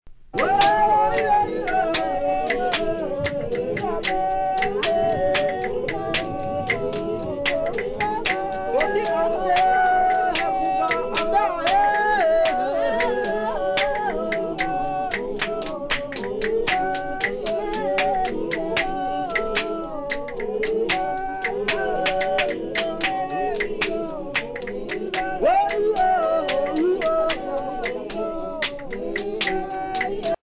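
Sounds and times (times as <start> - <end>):
Mbuti elephant hunting song singing: 0.3 - 30.4.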